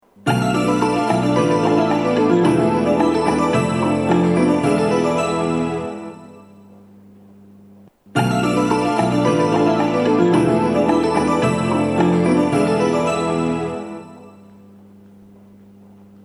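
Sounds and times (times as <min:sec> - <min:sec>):
station train departure signal sound from a ceiling speaker: 0:00.2 - 0:06.8, 0:08.1 - 0:15.0.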